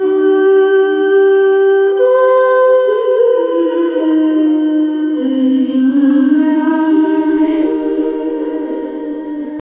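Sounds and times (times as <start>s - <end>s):
alluring siren song: 0.0s - 9.6s.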